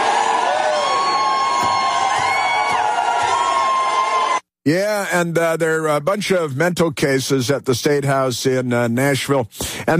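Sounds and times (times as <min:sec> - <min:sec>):
dense crowd of protesters shouting and jeering: 0:00.0 - 0:04.4
speech: 0:04.7 - 0:09.9.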